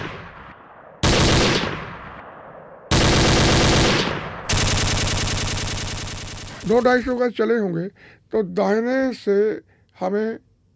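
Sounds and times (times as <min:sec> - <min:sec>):
rapid automatic gunfire: 0:01.0 - 0:01.9, 0:02.9 - 0:07.1
speech: 0:06.6 - 0:10.5.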